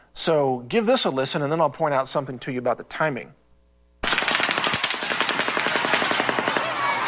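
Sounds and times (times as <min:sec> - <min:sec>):
speech: 0:00.2 - 0:03.4
rifle rounds striking pavement: 0:04.0 - 0:07.0.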